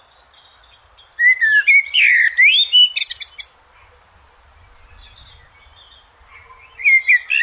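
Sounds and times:
Eurasian blackbird singing mellow whistled phrase with scratchy twitter: 1.2s - 3.6s, 4.9s - 7.4s.

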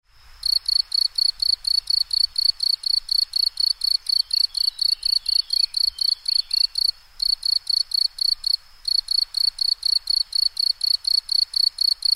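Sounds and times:
bush cricket chirping: 0.1s - 12.1s.

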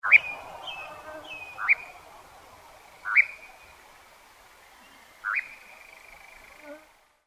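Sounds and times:
nightjar calling: 0.0s - 3.8s, 4.7s - 6.6s.

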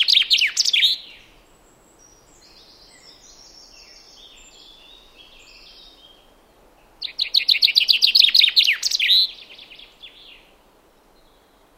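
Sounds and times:
Common chaffinch singing: 0.0s - 10.5s.

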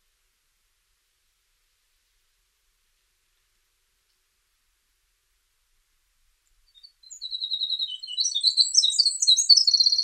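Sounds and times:
winter wren song: 6.4s - 10.0s
speech: 9.8s - 10.0s.

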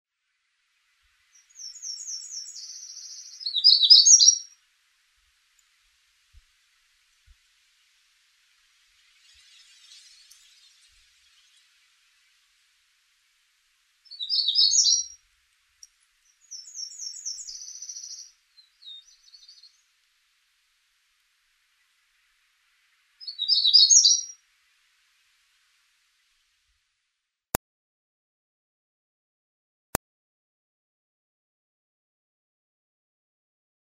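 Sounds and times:
magnolia warbler: 1.2s - 4.6s, 5.3s - 13.2s, 14.0s - 20.0s, 21.5s - 25.8s.

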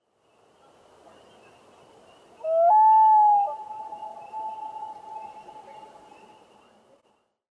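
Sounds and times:
common loon calling: 2.4s - 6.0s.

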